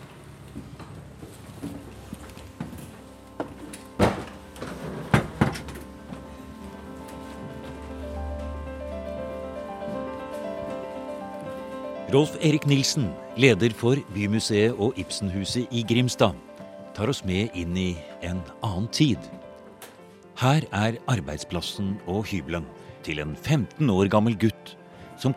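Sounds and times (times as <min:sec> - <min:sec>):
old door at stairway entrance of historic pharmacy museum opening and closing: 0:03.4 - 0:06.2
solid door thumps: 0:04.0 - 0:05.9
speech: 0:12.1 - 0:19.4, 0:20.4 - 0:25.3.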